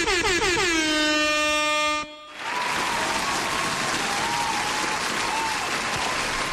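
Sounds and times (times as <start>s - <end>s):
loud blaring air horn: 0.0s - 2.6s
steady dense applause and cheering: 2.3s - 6.5s.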